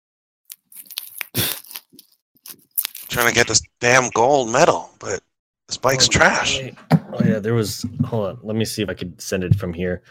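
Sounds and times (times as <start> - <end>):
person chewing an almond candy bar: 0.5 - 3.4
speech: 3.2 - 10.0.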